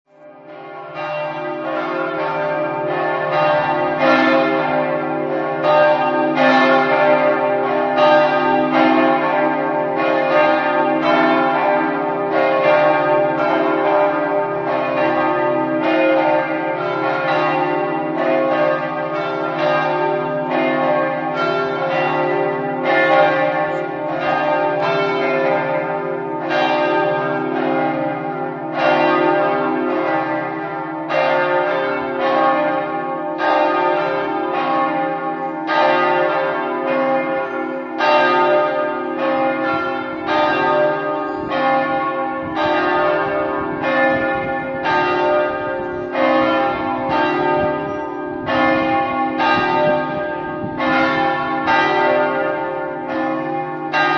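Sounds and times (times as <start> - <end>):
bells ringing in Cividat: 0.2 - 54.1.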